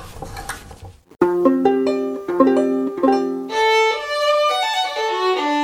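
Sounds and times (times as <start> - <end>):
violin: 1.2 - 5.6.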